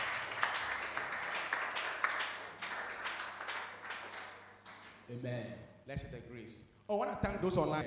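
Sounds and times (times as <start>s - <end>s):
audience clapping: 0.0s - 5.1s
speech: 5.1s - 7.8s.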